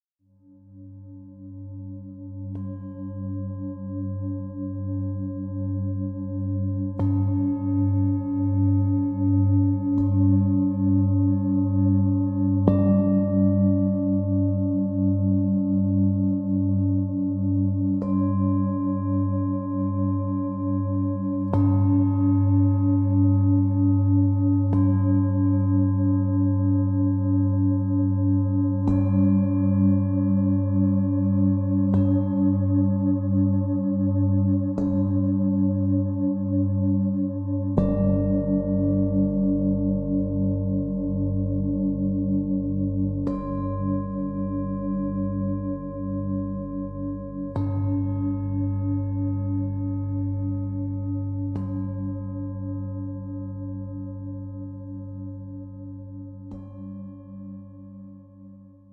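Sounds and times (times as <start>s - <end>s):
singing bowls for root chakra meditation: 1.6s - 58.7s.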